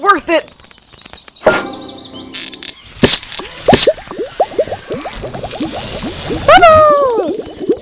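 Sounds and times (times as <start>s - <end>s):
speech: 0.1s - 0.6s
cartoonish bubbles popping: 3.0s - 7.8s.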